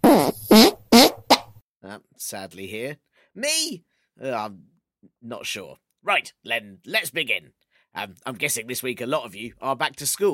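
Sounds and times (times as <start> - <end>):
loud fart sound effects: 0.0 - 1.6
speech: 2.2 - 10.3.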